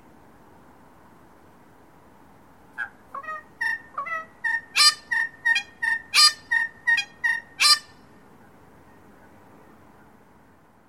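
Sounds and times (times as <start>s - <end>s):
red wattlebird calling with clipped nasal notes at Merry Creek, Melbourne, Australia: 2.8s - 8.0s.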